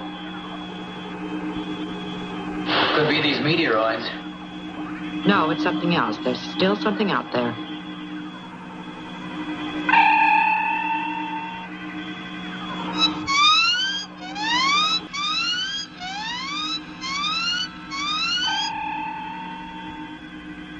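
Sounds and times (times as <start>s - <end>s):
radio crackle: 0.0s - 9.6s
steady electronic tone: 0.0s - 20.7s
speech: 3.0s - 4.2s, 5.2s - 7.7s.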